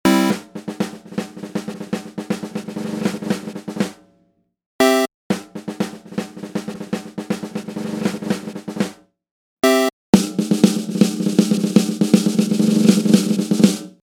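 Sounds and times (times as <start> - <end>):
dry gated snare drum: 0.0 - 4.2, 4.8 - 9.0, 9.6 - 14.0.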